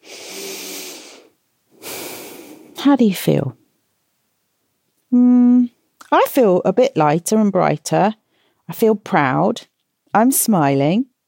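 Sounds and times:
deep breath in: 0.0 - 2.8
speech: 2.8 - 3.6, 5.1 - 5.4, 6.2 - 11.1.

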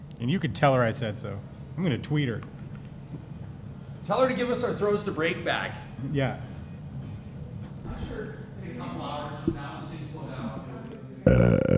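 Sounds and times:
speech: 0.2 - 3.2, 4.0 - 6.5, 11.3 - 11.7
long guttural burp into a microphone: 11.3 - 11.7.

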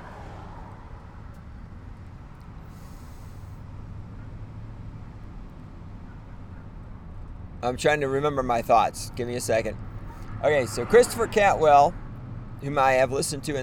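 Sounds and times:
low rumbling road noise from inside a moving car: 0.0 - 13.6
speech: 7.6 - 9.8, 10.4 - 12.0, 12.6 - 13.6.

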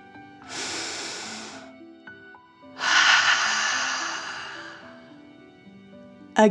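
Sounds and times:
strong loud rush of air pushed out: 0.4 - 1.7, 2.8 - 5.1
long airy breath drawn in: 0.4 - 1.8, 2.8 - 5.2.

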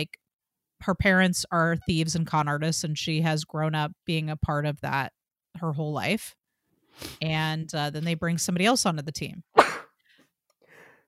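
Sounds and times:
speech: 0.0 - 0.2, 0.8 - 6.4, 7.0 - 9.5
single loud sneeze: 9.6 - 10.0
faint breathy sound: 10.0 - 11.0.

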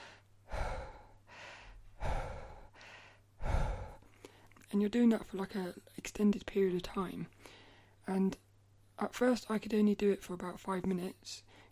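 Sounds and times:
voice imitating continuous rapid breathing as in breathwork practice: 0.0 - 4.6, 7.4 - 8.0
speech: 4.7 - 8.4, 9.0 - 11.6.

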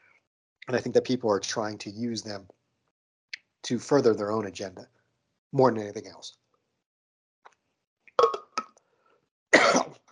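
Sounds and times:
speech: 0.7 - 2.6, 3.6 - 6.4
person coughing: 9.6 - 10.0.

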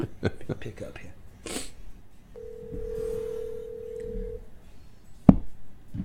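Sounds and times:
speech: 0.2 - 1.6
steady electronic telephone beep as a call is placed: 2.4 - 4.4.

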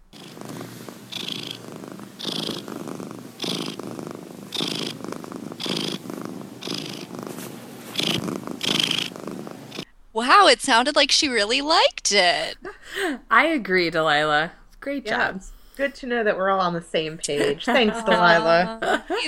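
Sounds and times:
cat purring: 0.0 - 9.9
speech: 10.2 - 19.2
laughter: 17.3 - 19.2.

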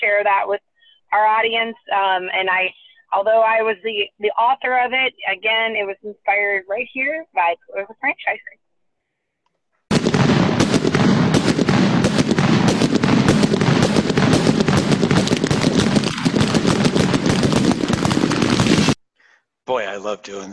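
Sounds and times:
speech: 0.1 - 8.6, 19.7 - 20.5
fireworks or gunshots going off outside: 9.9 - 19.0.

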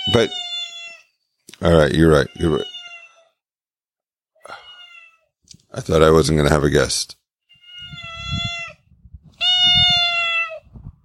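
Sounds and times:
cat meowing: 0.0 - 1.1, 2.1 - 3.4, 4.6 - 5.3, 7.5 - 10.7
speech: 0.1 - 0.4, 1.6 - 2.7, 5.7 - 7.2.

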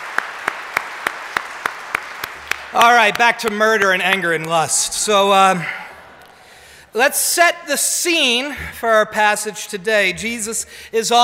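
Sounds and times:
audience clapping in unison: 0.0 - 6.4
speech: 2.7 - 5.8, 6.9 - 11.2.

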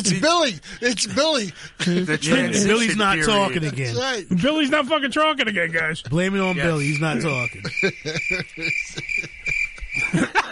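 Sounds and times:
people murmuring: 0.0 - 4.5, 6.0 - 10.3
people laughing: 0.0 - 4.7, 5.9 - 10.5
speech: 0.0 - 9.4
cricket chirp sound effect: 6.4 - 10.5.

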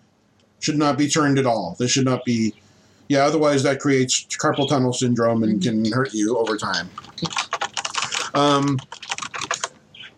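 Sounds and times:
speech: 0.6 - 7.5, 8.4 - 9.1
short voiced hum: 0.6 - 10.1
rapid typing on a non-mechanical rubber-dome computer keyboard: 6.5 - 10.1.

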